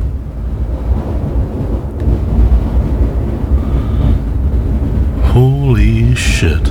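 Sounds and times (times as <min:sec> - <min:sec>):
deep continuous rumble of thunder in a thunderstorm: 0:00.0 - 0:06.6
stormy wind: 0:00.0 - 0:06.6
speech: 0:05.8 - 0:06.6.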